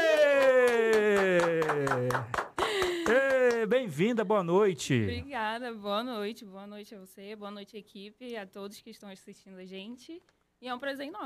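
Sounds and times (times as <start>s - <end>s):
people whooping and cheering: 0.0s - 3.7s
small team clapping in a rhythmic beat: 0.0s - 4.2s
speech: 1.8s - 2.4s, 3.1s - 11.2s.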